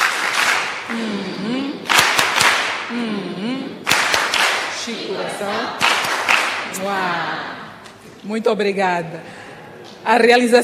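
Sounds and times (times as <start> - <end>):
crowd of children clapping: 0.0 - 1.1, 1.8 - 2.9, 3.8 - 6.8
speech: 6.7 - 7.6, 8.2 - 9.4, 10.0 - 10.6.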